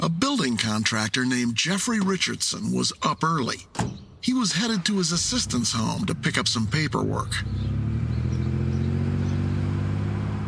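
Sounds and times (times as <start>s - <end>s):
speech: 0.0s - 7.8s
truck engine idling with faint rattles: 3.5s - 10.4s.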